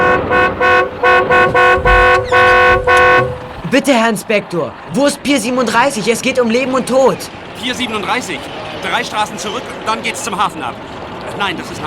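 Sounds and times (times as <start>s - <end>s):
car horn honking: 0.0s - 3.7s
faint rumble: 0.0s - 3.8s
speech: 3.7s - 11.8s.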